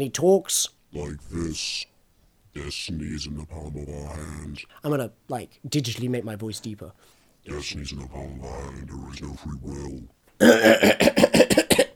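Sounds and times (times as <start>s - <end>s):
speech: 0.0s - 1.9s, 2.6s - 11.5s
person imitating a character's coughing fit: 10.4s - 11.9s.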